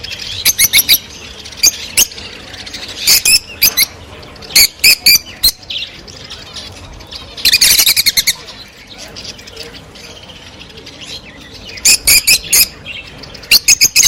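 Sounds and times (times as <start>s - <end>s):
Rosy-faced lovebird chirping: 0.0s - 14.0s.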